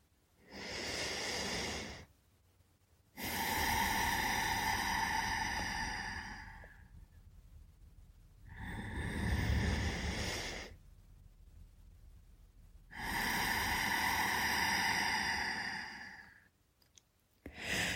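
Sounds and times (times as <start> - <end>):
deep breaths taken during a guided meditation: 0.0 - 2.2, 3.1 - 7.1, 8.4 - 11.0, 12.8 - 16.6, 17.4 - 17.9.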